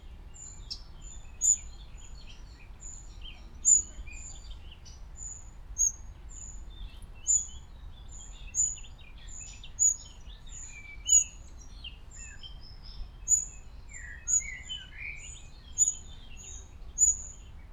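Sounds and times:
faint twittering from other birds: 0.4s - 7.6s, 8.2s - 17.5s
Eurasian wren Troglodytes troglodytes giving high sharp ticking calls: 3.6s - 4.0s, 15.8s - 17.4s.

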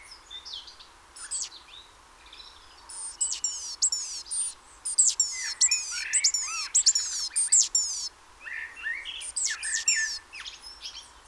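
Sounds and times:
softer lower bird chirps and warbles: 0.1s - 8.1s, 8.7s - 11.2s
great tit Parus major thin high downslurred notes with sharp ticks: 1.2s - 1.5s, 2.9s - 8.1s, 8.9s - 11.2s.

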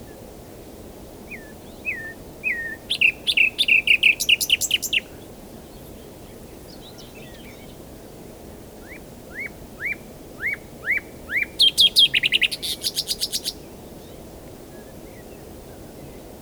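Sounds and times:
common nightingale Luscinia megarhynchos song: 1.3s - 5.9s, 8.8s - 14.2s.

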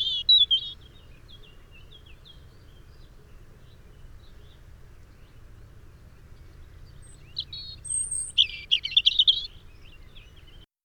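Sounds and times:
European robin singing: 0.0s - 2.8s, 6.9s - 10.6s.

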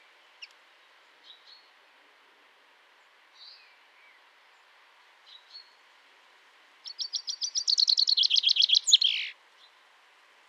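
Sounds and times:
common chaffinch Fringilla coelebs singing: 6.9s - 9.4s.

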